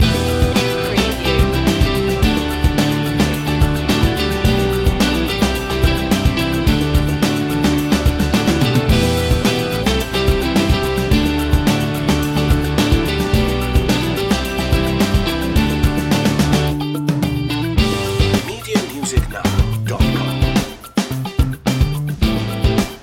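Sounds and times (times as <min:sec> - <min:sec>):
grooving piano loop: 0:00.0 - 0:22.8.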